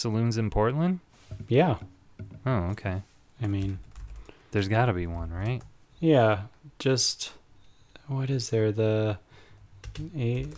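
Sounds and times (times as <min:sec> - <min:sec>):
speech: 0:00.0 - 0:03.9, 0:04.5 - 0:07.4, 0:08.1 - 0:09.2, 0:09.9 - 0:10.5
quick keyboard clicks: 0:03.4 - 0:04.3, 0:05.0 - 0:05.7, 0:09.8 - 0:10.5.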